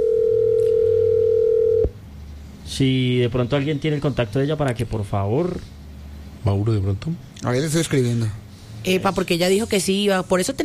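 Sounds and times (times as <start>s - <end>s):
phone ringing tone while a call tries to connect: 0.0s - 1.9s
low hum: 0.0s - 10.6s
speech: 2.8s - 5.8s, 6.4s - 10.6s.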